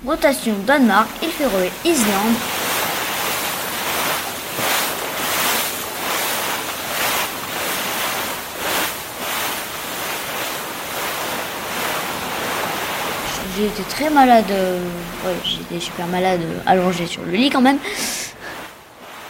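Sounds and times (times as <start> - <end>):
speech: 0.0 - 2.6, 13.6 - 18.2
strong wind heard behind a door of a cargo ship: 0.0 - 18.8
faint low rumble: 12.1 - 18.6.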